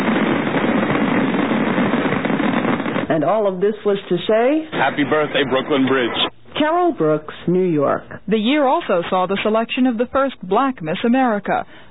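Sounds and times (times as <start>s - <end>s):
huge fireworks display booming and crackling at night in New York: 0.0s - 6.3s
speech: 3.2s - 11.8s.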